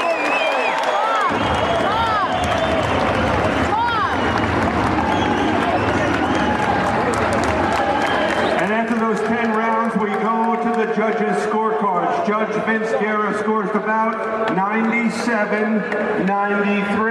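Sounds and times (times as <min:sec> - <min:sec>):
whistles from boxing arena crowd: 0:00.0 - 0:06.9, 0:07.7 - 0:08.6
large boxing arena crowd applauding and cheering after a title bout: 0:00.0 - 0:16.3
boxing arena crowd members shouting: 0:01.0 - 0:08.4
speech: 0:15.1 - 0:17.1.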